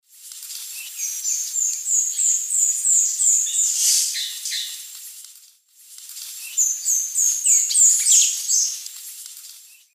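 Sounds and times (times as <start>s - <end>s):
Cranioleuca gutturata song in the Eastern Lowlands of South America: 0.7s - 4.9s, 6.3s - 8.8s.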